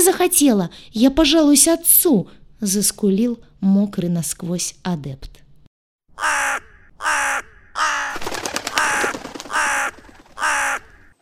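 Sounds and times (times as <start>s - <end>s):
speech: 0.0s - 5.4s
crow cawing loudly: 6.2s - 11.2s
crow wings flapping: 7.8s - 11.2s.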